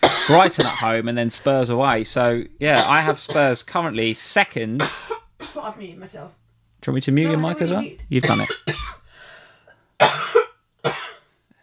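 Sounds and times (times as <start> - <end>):
person with a persistent cough coughing harshly: 0.0 - 0.8, 2.7 - 3.5, 4.8 - 5.7, 8.2 - 9.0, 10.0 - 11.3
speech: 0.3 - 8.9.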